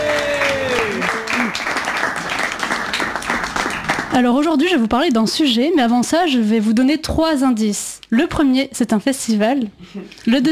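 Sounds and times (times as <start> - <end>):
audience applause for a performer on stage: 0.0 - 4.2
speech: 4.2 - 10.5.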